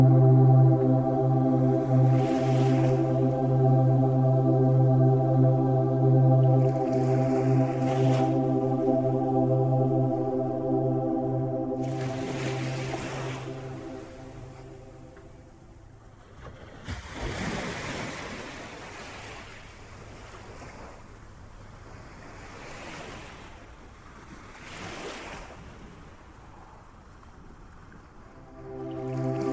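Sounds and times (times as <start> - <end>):
sustained relaxing music tones: 0.0 - 16.0, 28.4 - 29.5
ocean waves: 0.0 - 26.5, 28.2 - 29.5
wind: 0.0 - 29.5.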